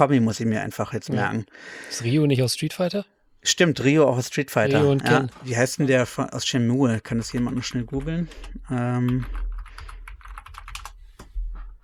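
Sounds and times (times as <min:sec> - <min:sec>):
speech: 0:00.0 - 0:09.5
typing on a computer keyboard: 0:07.1 - 0:11.6.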